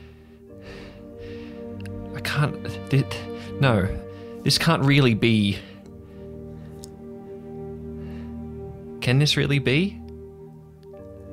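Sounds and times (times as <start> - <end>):
heavy panicked breathing: 0.0 - 2.2, 3.1 - 4.6, 5.4 - 8.9
speech: 2.2 - 5.7, 9.1 - 10.0.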